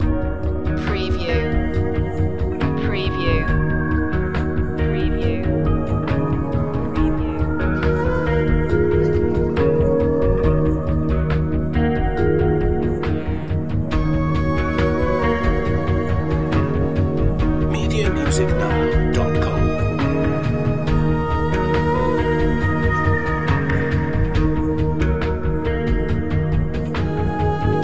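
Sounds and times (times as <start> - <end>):
urban grand piano loop: 0.0 - 27.8.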